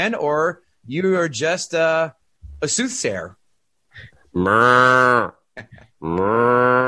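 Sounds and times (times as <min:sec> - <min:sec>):
speech: 0:00.0 - 0:03.4, 0:04.0 - 0:06.8
person imitating a cow mooing: 0:04.3 - 0:05.4, 0:06.0 - 0:06.8.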